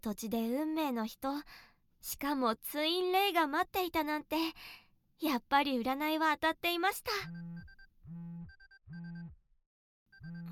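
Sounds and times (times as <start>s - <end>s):
speech: 0.0s - 7.5s
phone ringing with a loud electronic ringtone: 7.3s - 7.9s, 8.5s - 9.3s, 10.1s - 10.5s.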